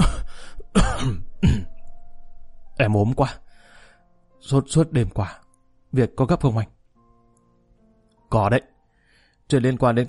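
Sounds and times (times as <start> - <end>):
person imitating a cough to feign illness: 0.0 - 1.7
speech: 2.8 - 3.5, 4.4 - 6.8, 8.3 - 8.7, 9.5 - 10.0.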